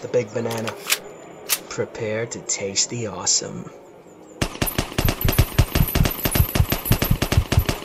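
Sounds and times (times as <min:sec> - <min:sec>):
speech: 0:00.0 - 0:01.1, 0:01.8 - 0:03.8
automatic gunfire: 0:04.4 - 0:07.8.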